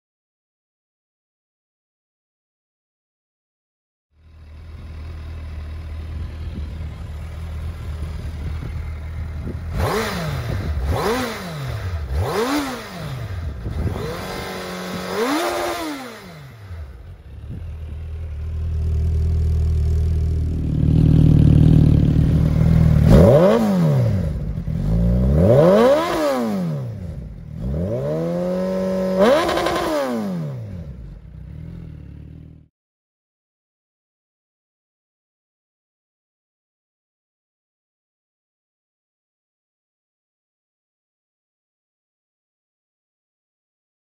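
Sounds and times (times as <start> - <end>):
racing car exhaust: 4.2 - 31.0.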